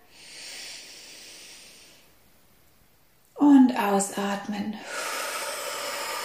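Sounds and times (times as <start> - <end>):
deep inhale during a breathing exercise for stress relief: 0.0 - 2.2, 4.8 - 6.2
speech: 3.8 - 5.1.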